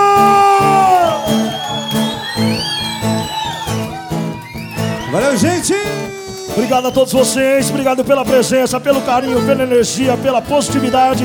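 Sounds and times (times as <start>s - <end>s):
live audience shouting, whooping and cheering: 0.0s - 8.0s
thumping rhythmic beat: 3.8s - 11.2s
speech: 6.8s - 11.2s.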